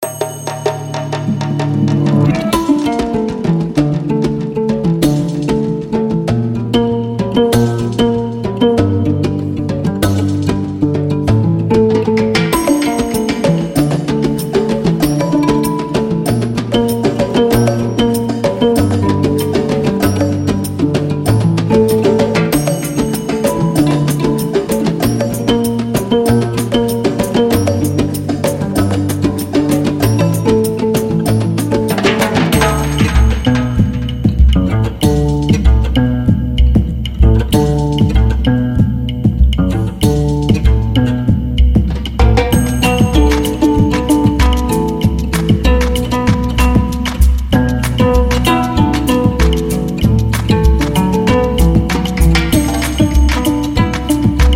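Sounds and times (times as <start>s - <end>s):
Gambian harp music: 1.1s - 54.5s.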